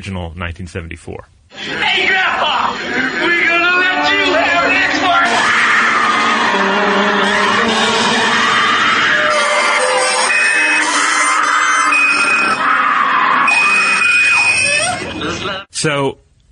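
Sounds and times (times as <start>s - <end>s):
speech: 0.0s - 5.7s, 6.5s - 7.9s, 15.8s - 16.2s
harsh sound effects: 1.5s - 15.4s
people shouting: 1.6s - 14.8s
woman screaming in terror in horror film clip: 4.0s - 15.0s.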